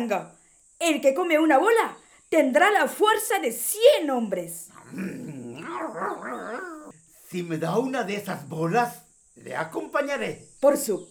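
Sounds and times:
speech: 0.0 - 11.0
dog growling and barking: 4.7 - 7.0.

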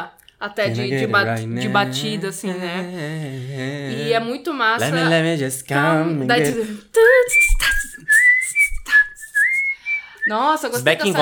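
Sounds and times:
speech: 0.0 - 8.1, 10.3 - 11.2
clear bright whistled melody: 7.0 - 11.2.

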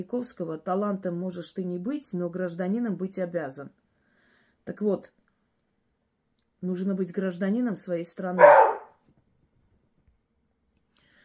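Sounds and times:
speech: 0.0 - 3.8, 4.6 - 5.2, 6.6 - 8.7
dog barking at other dogs walking near a gate: 8.4 - 9.0.

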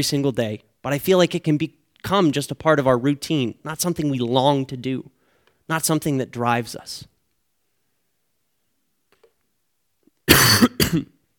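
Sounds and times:
speech: 0.0 - 7.1, 10.5 - 11.2
person clearing throat: 10.2 - 11.2.

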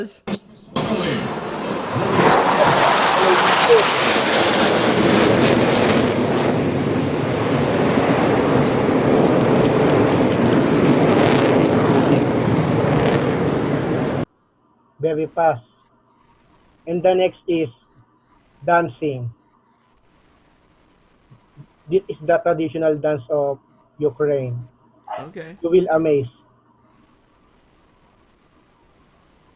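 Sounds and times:
speech: 0.0 - 2.7, 3.3 - 5.4, 15.1 - 15.7, 16.8 - 17.8, 18.6 - 19.4, 21.9 - 26.4
airplane flying past with a loud jet roar: 0.5 - 14.3.

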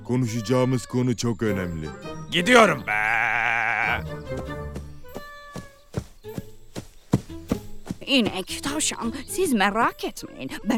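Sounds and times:
speech: 0.0 - 3.2, 3.9 - 4.6, 8.1 - 10.7
goat bleating: 2.8 - 4.0.

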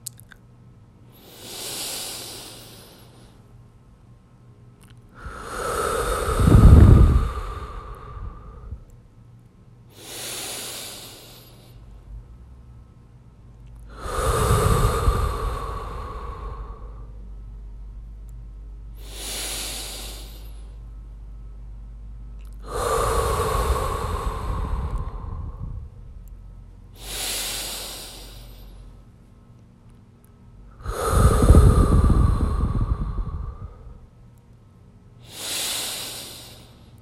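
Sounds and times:
deep long breaths: 1.1 - 3.5, 5.1 - 8.9, 9.9 - 12.0, 13.9 - 17.4, 18.9 - 21.0, 22.6 - 26.0, 26.9 - 29.0, 30.7 - 34.2, 35.2 - 37.0.

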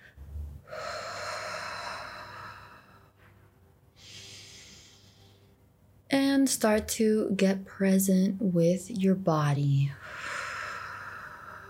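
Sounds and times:
slow deep breath: 0.0 - 3.4, 4.0 - 5.6, 10.0 - 11.6
speech: 6.4 - 10.2.

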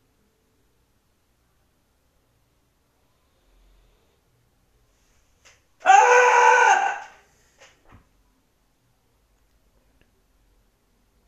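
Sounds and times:
man screaming loudly to release stress: 5.8 - 7.2.

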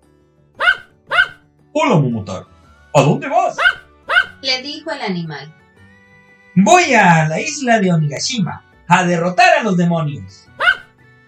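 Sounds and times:
dog barking: 0.6 - 1.4, 3.5 - 4.4, 10.6 - 10.9
speech: 1.8 - 3.8, 4.4 - 5.6, 6.6 - 10.4.

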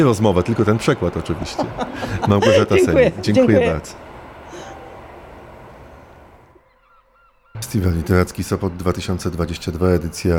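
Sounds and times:
speech: 0.0 - 4.1, 7.6 - 10.3
laughter: 0.0 - 4.7
train passing at a literary festival in Sopot: 0.0 - 6.8, 7.5 - 10.3
faint high bird chirps: 5.9 - 10.3.

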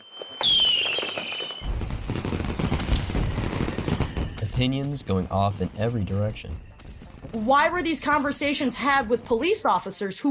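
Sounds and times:
firework whistling up with a high falling shriek: 0.0 - 7.4
fireworks bursting into a dense continuous crackle of popping explosions: 0.0 - 9.6
speech: 4.6 - 6.7, 7.3 - 10.3.

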